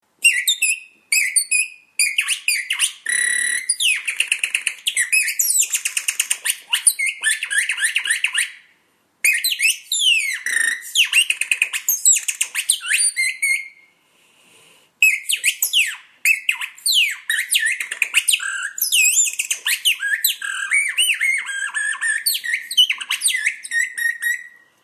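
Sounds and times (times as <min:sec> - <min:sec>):
bird whistle: 0:00.2 - 0:14.0, 0:15.0 - 0:24.7.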